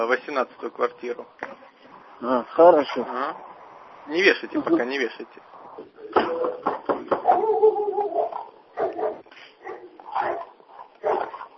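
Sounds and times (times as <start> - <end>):
speech: 0.0 - 1.6, 2.2 - 6.7
dog barking: 7.2 - 11.5.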